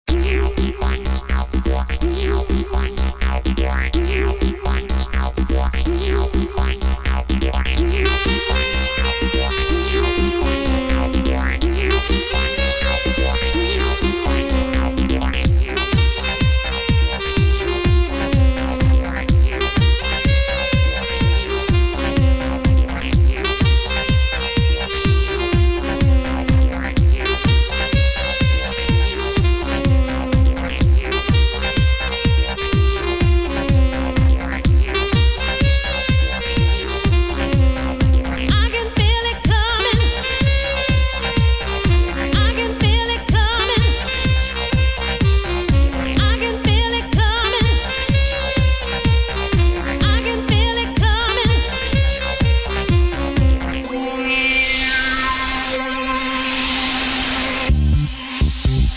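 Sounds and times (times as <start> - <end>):
dance song with saxophone: 0.1 - 58.9.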